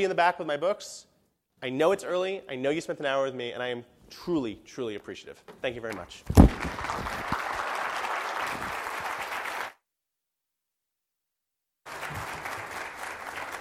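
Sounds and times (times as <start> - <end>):
speech: 0.0 - 7.2
large audience applauding after a talk: 6.4 - 9.8, 11.9 - 13.5.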